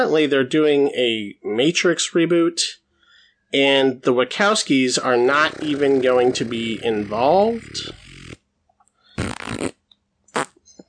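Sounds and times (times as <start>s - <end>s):
speech: 0.0s - 2.8s, 3.5s - 8.0s
person blowing a buzzing raspberry with lips to express disdain: 5.0s - 8.4s, 9.1s - 10.7s.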